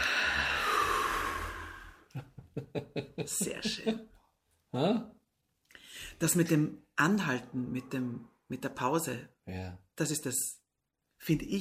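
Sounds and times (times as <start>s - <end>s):
long steady inhaled breath during a guided breathing exercise: 0.0s - 2.2s
laughter: 2.1s - 4.0s
speech: 2.8s - 5.2s, 6.0s - 10.6s, 11.2s - 11.5s.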